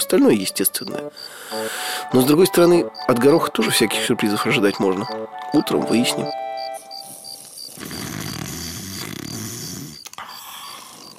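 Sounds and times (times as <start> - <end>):
speech: 0.0 - 6.4
man snoring loudly: 7.8 - 11.1.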